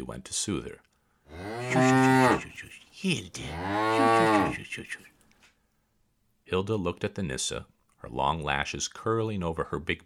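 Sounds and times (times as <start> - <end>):
speech: 0.1 - 5.1, 6.5 - 10.0
quiet breathy milk cow sounds: 1.2 - 4.8
upset milk cow mooing: 1.3 - 2.5, 3.4 - 4.6.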